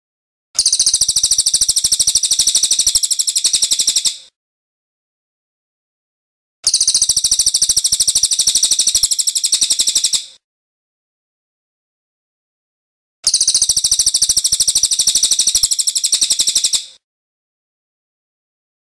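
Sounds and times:
cililin bird singing quick shrill chirps: 0:00.6 - 0:04.3, 0:06.7 - 0:10.4, 0:13.2 - 0:17.0.

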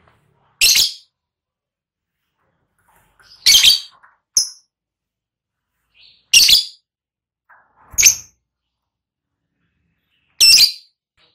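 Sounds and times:
lovebird harsh high squawks and short chirps: 0:00.6 - 0:01.1, 0:03.2 - 0:04.7, 0:05.9 - 0:06.8, 0:07.5 - 0:08.4, 0:10.4 - 0:11.0.

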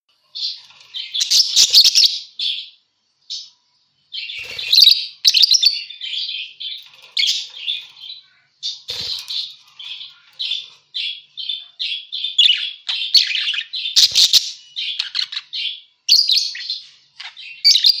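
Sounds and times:
parakeet chatter used as a lure for catching birds: 0:00.4 - 0:02.7, 0:04.2 - 0:17.9.

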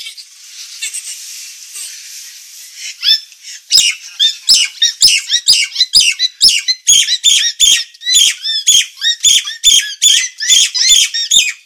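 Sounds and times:
Nias hill myna rapid harsh squawking song: 0:02.8 - 0:11.6.

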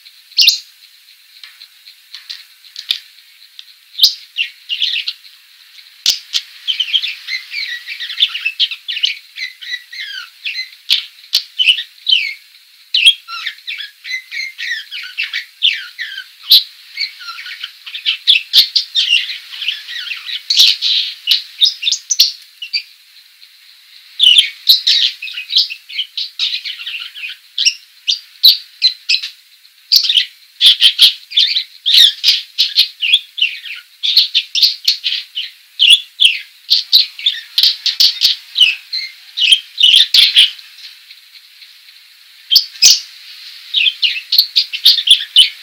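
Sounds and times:
female parakeet: 0:00.0 - 0:00.8, 0:03.9 - 0:45.6.

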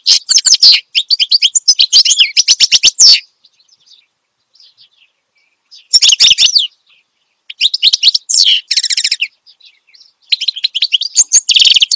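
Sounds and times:
finch song with high twittering notes and rapid buzzy trill: 0:00.0 - 0:11.9.

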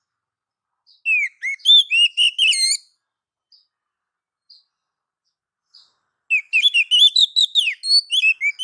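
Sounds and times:
female Oriental magpie-robin calling the male: 0:00.8 - 0:03.8, 0:04.4 - 0:08.6.

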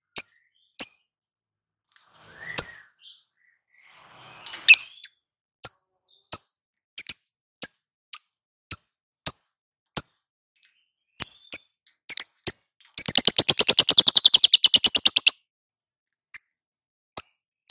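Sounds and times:
lovebird singing crisp high chirps and a long rapid rattling trill: 0:00.1 - 0:01.2, 0:04.7 - 0:10.2, 0:10.8 - 0:17.6.

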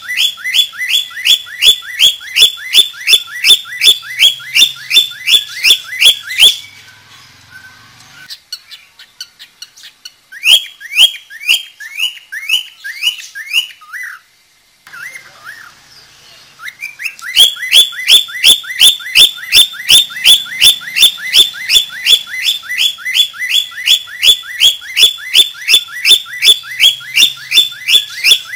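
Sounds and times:
budgerigar chirping with rising whistled notes: 0:00.0 - 0:14.2, 0:14.9 - 0:28.5.

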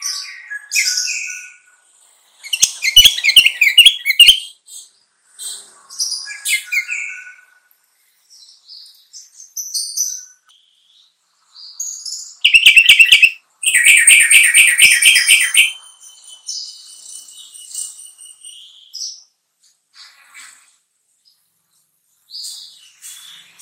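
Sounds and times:
sooty-headed bulbul singing: 0:02.5 - 0:04.5, 0:12.4 - 0:15.8.

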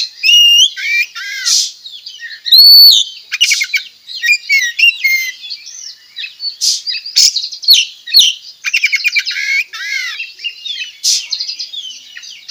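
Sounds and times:
Oriental magpie-robin singing varied whistled phrases, trills and chattering: 0:00.0 - 0:12.4.

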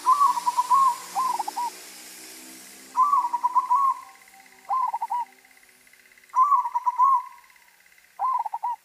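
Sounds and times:
white zebra dove cooing in a stuttering trill: 0:00.0 - 0:01.8, 0:03.0 - 0:05.4, 0:06.3 - 0:08.8.

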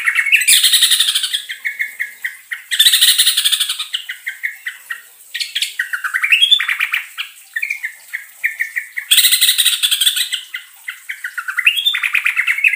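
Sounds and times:
yellow-vented bulbul singing chirps with long rolling trill: 0:00.0 - 0:12.7.

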